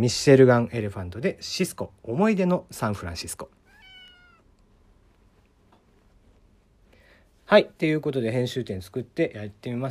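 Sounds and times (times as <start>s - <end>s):
speech: 0.0s - 3.6s, 7.5s - 9.8s
domestic cat meowing: 3.6s - 4.6s.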